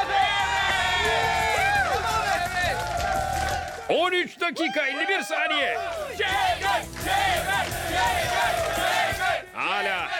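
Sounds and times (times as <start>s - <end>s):
overlapping shouts and rising whoops: 0.0s - 3.9s, 4.6s - 6.8s
crowd cheering and clapping for a competitor after an eating challenge: 0.0s - 10.1s
speech: 4.5s - 10.1s.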